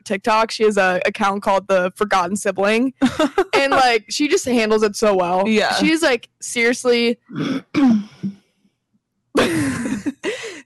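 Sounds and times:
speech: 0.1 - 8.4
laughter: 3.0 - 4.0
person clearing throat: 7.3 - 8.3, 9.4 - 10.4.

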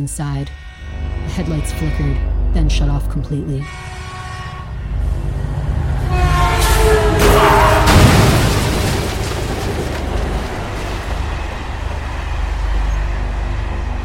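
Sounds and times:
speech: 0.0 - 0.6, 1.3 - 4.0
train horn blaring: 0.0 - 8.5, 10.6 - 14.0
heavy rumble: 0.0 - 14.0
train crashing into car: 6.7 - 11.5
explosion: 7.2 - 11.4.

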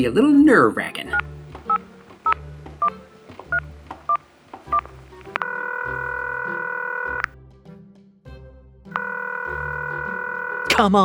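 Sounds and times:
speech: 0.0 - 1.3, 10.8 - 11.0
telephone keypad tones on speakerphone: 1.2 - 7.3, 9.0 - 10.8
telephone ringing tone on speakerphone: 4.7 - 7.3, 8.9 - 10.8.

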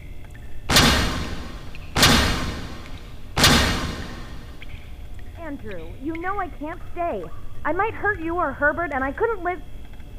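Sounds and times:
heavy booming thuds: 0.7 - 5.0
speech: 5.5 - 10.1.

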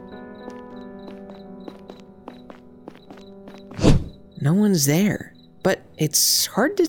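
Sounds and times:
footsteps walking on a dark street: 0.0 - 4.2
speech: 4.4 - 6.8.

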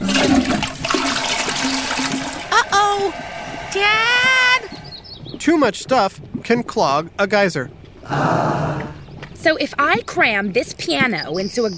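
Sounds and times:
toilet flushing with gurgling and low hum: 0.0 - 5.1
speech: 3.1 - 4.3, 5.5 - 11.7.

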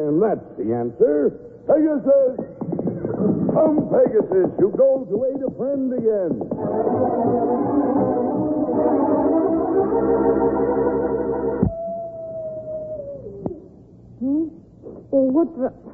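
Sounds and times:
speech: 0.0 - 2.6, 3.2 - 8.1, 14.2 - 15.9
several wolves howling together: 6.6 - 13.8.

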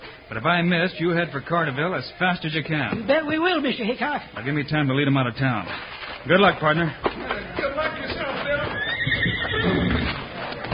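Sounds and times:
speech: 0.3 - 7.7
horse whinnying: 8.5 - 10.3.

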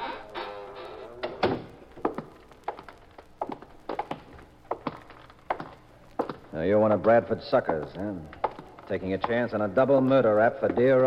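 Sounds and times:
door creaking and shutting with a solid thunk: 0.1 - 1.8
footsteps walking across a hard floor: 2.0 - 9.4, 10.6 - 11.0
speech: 6.6 - 11.0.

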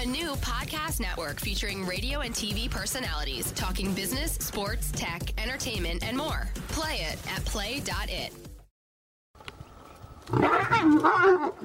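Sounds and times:
speech: 0.0 - 8.5, 10.3 - 11.6
huge black-maned lion roaring in Zimbabwe: 10.2 - 11.6.

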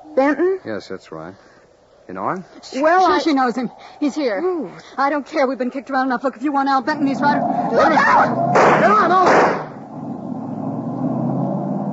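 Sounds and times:
speech: 0.2 - 9.6
car engine rumbling of a moving vehicle: 6.9 - 11.9.

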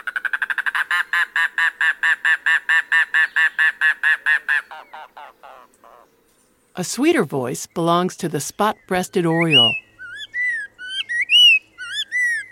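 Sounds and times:
mangrove cuckoo calling: 0.0 - 6.2, 8.4 - 12.5
speech: 6.8 - 9.8.

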